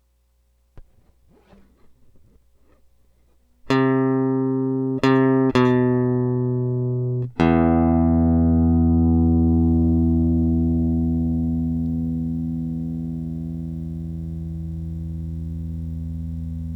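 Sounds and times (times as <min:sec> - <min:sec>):
electric guitar: 0:03.7 - 0:16.7.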